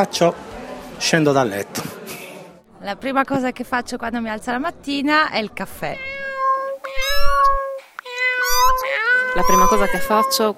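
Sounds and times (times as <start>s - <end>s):
speech: 0.0s - 2.0s, 2.8s - 6.2s, 8.8s - 10.5s
cats meowing at a door to be let outside: 5.8s - 10.5s.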